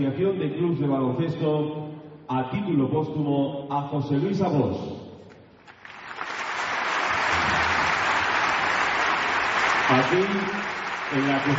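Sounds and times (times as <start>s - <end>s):
speech: 0.0s - 5.0s, 9.9s - 11.5s
large arena crowd applauding: 5.6s - 11.5s.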